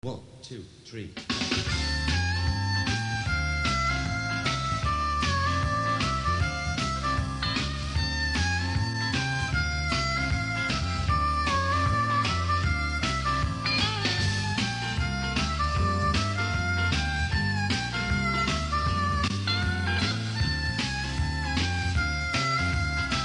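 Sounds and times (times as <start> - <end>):
harmonica: 1.5 - 23.2.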